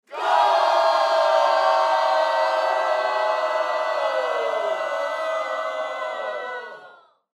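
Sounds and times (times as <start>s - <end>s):
crowd cheering a goal: 0.0s - 7.2s.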